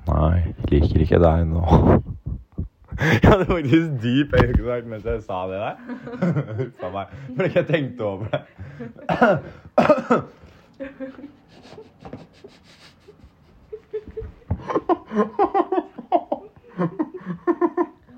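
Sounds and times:
speech: 0.2 - 2.2, 3.0 - 11.9
throaty sounds: 1.6 - 3.2
laughter: 1.6 - 4.0, 5.7 - 18.1
person coughing harshly: 9.1 - 10.4.

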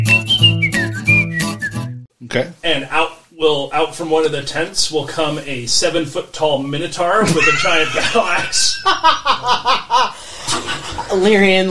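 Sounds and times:
person whistling a wavering tune of sliding sustained notes: 0.0 - 2.0
speech: 2.3 - 11.7
laughter: 7.2 - 11.1.

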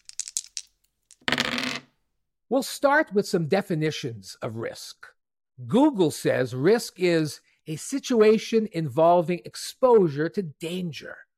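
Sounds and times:
dice rattling on a table: 0.0 - 1.9
speech: 2.5 - 11.3.

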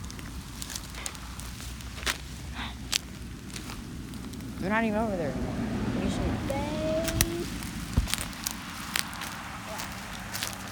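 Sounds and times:
crunching taps: 0.0 - 4.6, 7.0 - 10.7
soft footsteps of someone creeping toward ducks: 0.0 - 5.3, 6.0 - 10.7
speech: 4.6 - 7.2.

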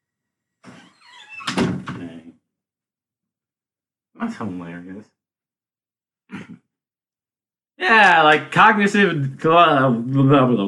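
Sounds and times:
door sliding with a squeaky scraping drag: 0.6 - 2.2
door shutting with a solid thunk: 1.4 - 2.2
speech: 4.2 - 5.2, 7.8 - 10.6.

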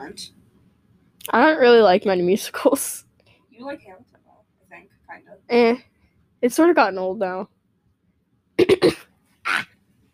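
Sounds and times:
speech: 0.1 - 0.4, 1.2 - 3.0, 3.6 - 7.6, 8.6 - 9.7
person coughing: 8.6 - 9.7.

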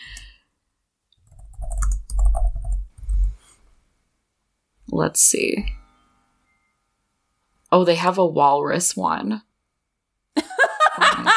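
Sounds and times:
hard rapid typing on a computer keyboard: 1.2 - 3.4
speech: 4.9 - 5.8, 7.7 - 9.5
laughter: 10.4 - 11.3.

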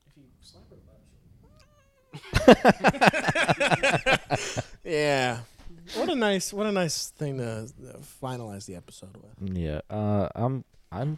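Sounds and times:
speech: 0.2 - 3.5, 4.4 - 11.1
cat meowing: 1.4 - 2.2
laughter: 2.2 - 5.1.

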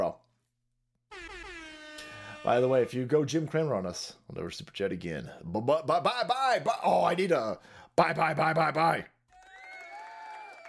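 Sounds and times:
big rig air horn blast: 1.1 - 2.9
speech: 2.4 - 9.1.

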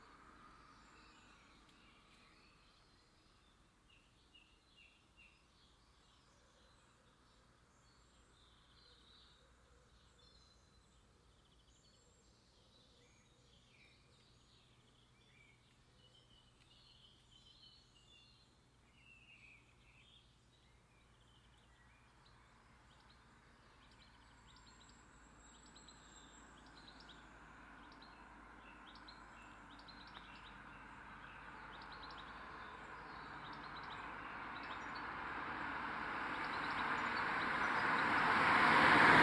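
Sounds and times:
birds chirping and twittering by a roadside: 0.7 - 39.2
single vehicle approaching with rushing engine noise: 22.6 - 39.2.

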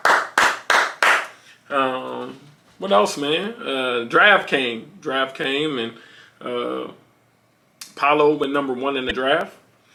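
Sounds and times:
loud hand claps with a short ringing tail: 0.0 - 1.4
speech: 1.7 - 7.0, 8.0 - 9.6.

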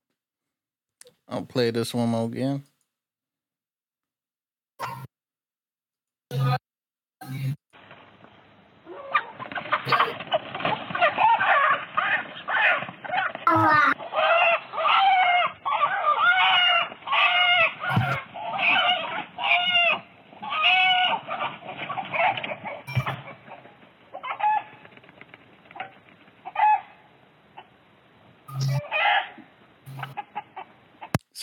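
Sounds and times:
speech: 1.3 - 2.7
rustling: 7.8 - 31.1
chicken squawking while attacked by hawk: 8.8 - 24.9, 25.8 - 27.7, 28.5 - 31.2.

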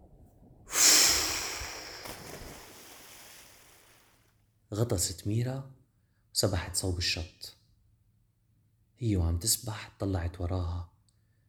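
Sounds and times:
whale spouting air and spray through its blowhole: 0.7 - 4.0
speech: 4.7 - 5.8, 6.4 - 7.6, 9.0 - 10.9.

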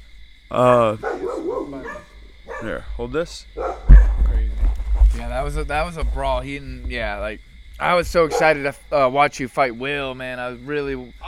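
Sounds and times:
speech: 0.5 - 3.8, 5.2 - 11.2
deaf dog barking: 1.0 - 2.8, 3.6 - 4.2, 8.1 - 8.7.

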